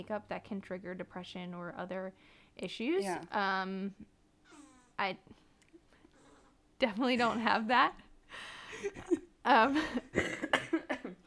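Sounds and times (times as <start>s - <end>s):
speech: 0.0s - 4.2s, 5.0s - 5.4s, 6.8s - 10.6s
person coughing: 8.8s - 9.2s, 10.1s - 11.2s.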